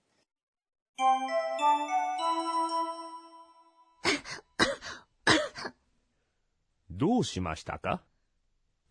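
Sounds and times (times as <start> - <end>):
sustained ringing chime-like tone: 1.0 - 4.0
sharp rough coughs: 4.1 - 5.8
speech: 7.0 - 8.1.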